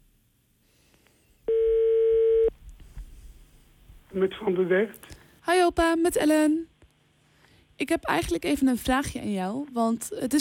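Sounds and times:
long steady telephone ringing tone: 1.5 - 2.5
speech: 4.2 - 6.7, 7.8 - 10.4.

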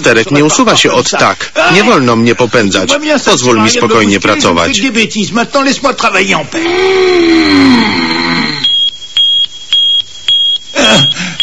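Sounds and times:
speech: 0.0 - 8.4
drawn-out vocal wail: 6.6 - 8.7
alarm beeps inside a spaceship in an animated scene: 7.2 - 11.4.

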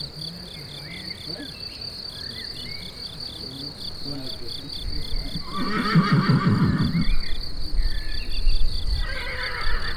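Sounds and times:
crickets chirping in Chindrieux France: 0.0 - 9.9
horse giving a low quavering call in Chindrieux France: 5.2 - 7.3, 9.0 - 9.9.

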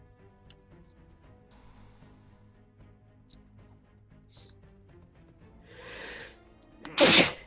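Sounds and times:
breathy inhale: 1.5 - 2.6, 5.6 - 6.4
loud sneeze: 6.9 - 7.4.

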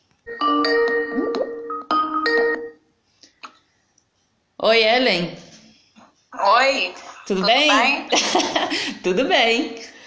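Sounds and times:
telephone ringtone chiming melody while placing a call: 0.3 - 2.9
speech: 4.6 - 5.4, 6.4 - 9.9.

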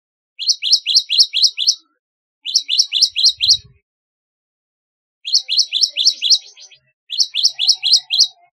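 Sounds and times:
Java sparrow singing: 0.4 - 3.8, 5.2 - 8.5.

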